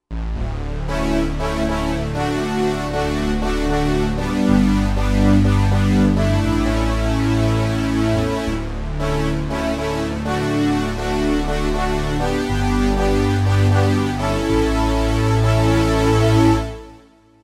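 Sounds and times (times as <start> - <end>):
1980s Oberheim OB-Xa vintage synth: 0.1 - 17.0.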